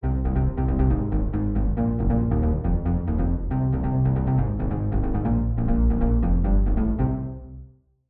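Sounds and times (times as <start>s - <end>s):
wet synth bass with ensemble reverb: 0.0s - 7.4s.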